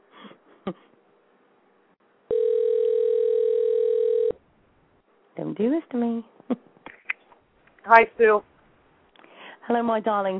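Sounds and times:
speech: 0:00.7 - 0:00.9, 0:05.6 - 0:06.6, 0:07.9 - 0:08.5, 0:09.7 - 0:10.3
telephone dial tone as a call is placed: 0:02.3 - 0:04.4.

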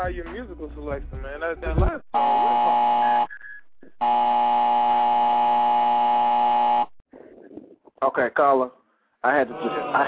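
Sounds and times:
speech: 0:00.0 - 0:03.0, 0:08.2 - 0:10.0
harsh electronic buzzer cutting off a radio caller: 0:02.1 - 0:07.0.

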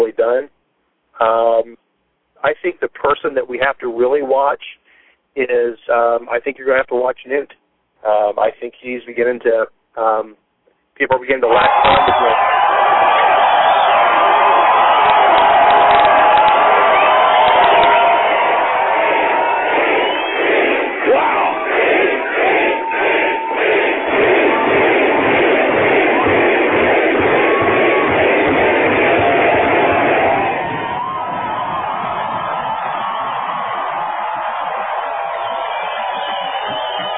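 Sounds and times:
speech: 0:00.0 - 0:00.6, 0:01.2 - 0:01.8, 0:02.4 - 0:04.8, 0:05.4 - 0:10.4, 0:11.0 - 0:12.6
large crowd screaming and cheering: 0:11.5 - 0:37.1.

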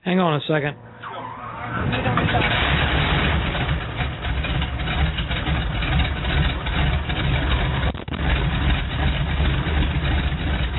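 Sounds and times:
aircraft engine starting up and roaring: 0:00.5 - 0:10.7.

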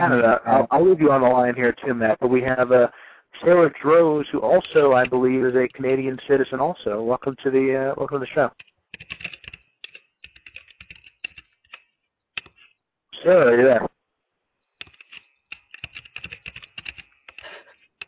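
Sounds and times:
speech: 0:00.0 - 0:09.2, 0:13.2 - 0:14.0
typing on a computer keyboard: 0:08.5 - 0:12.7, 0:14.8 - 0:18.0.

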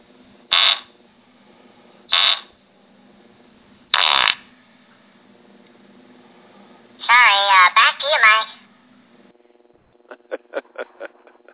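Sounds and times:
faint steady background: 0:00.0 - 0:10.0
fart sound effect: 0:00.5 - 0:00.9, 0:02.1 - 0:02.5, 0:04.0 - 0:04.5
laughter: 0:10.1 - 0:11.5.

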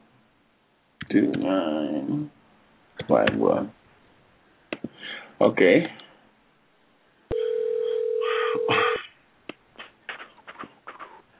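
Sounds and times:
speech: 0:01.1 - 0:02.4, 0:03.0 - 0:03.8, 0:05.4 - 0:06.0
telephone dial tone: 0:07.3 - 0:08.7.

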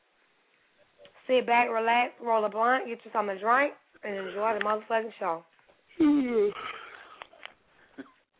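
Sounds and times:
speech: 0:01.3 - 0:06.8
person yawning: 0:06.0 - 0:06.9.

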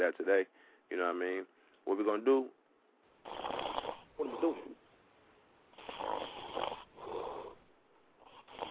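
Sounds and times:
speech: 0:00.0 - 0:02.6, 0:04.2 - 0:04.8
person snoring with rough rattling snores: 0:03.2 - 0:04.7, 0:05.8 - 0:07.6, 0:08.2 - 0:08.6.

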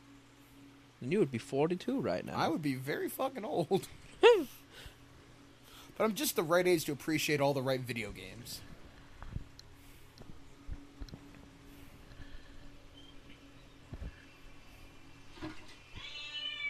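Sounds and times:
speech: 0:01.0 - 0:04.9, 0:06.0 - 0:08.7
low rumble: 0:03.7 - 0:16.6
cat meowing: 0:15.9 - 0:16.6.

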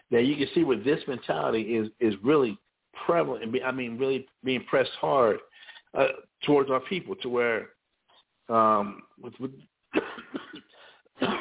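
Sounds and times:
speech: 0:00.1 - 0:07.8, 0:08.5 - 0:10.4
loud harsh rasping cough: 0:09.9 - 0:11.3.

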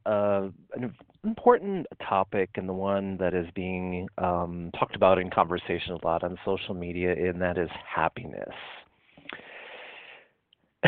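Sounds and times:
speech: 0:01.5 - 0:09.4
speaker inhaling breath: 0:09.0 - 0:10.4.

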